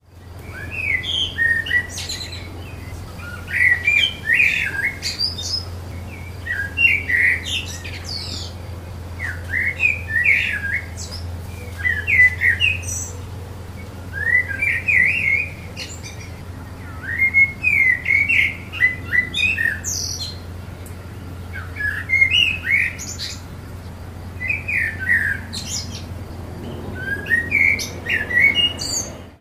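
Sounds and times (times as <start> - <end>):
blackbird: 0.1 - 29.3.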